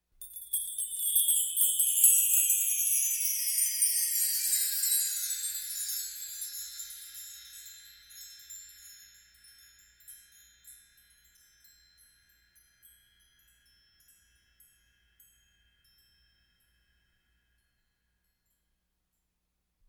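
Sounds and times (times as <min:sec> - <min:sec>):
orchestral wind chimes: 0:00.1 - 0:18.9.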